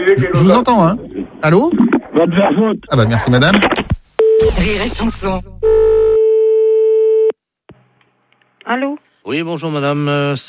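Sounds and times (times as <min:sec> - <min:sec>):
speech: 0:00.1 - 0:03.8, 0:04.4 - 0:05.6, 0:08.7 - 0:10.4
telephone tone after a caller hangs up: 0:05.6 - 0:07.4.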